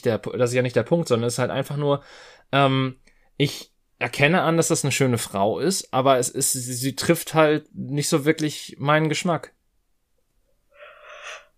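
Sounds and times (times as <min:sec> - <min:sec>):
speech: 0:00.0 - 0:09.6
person yawning: 0:10.8 - 0:11.5.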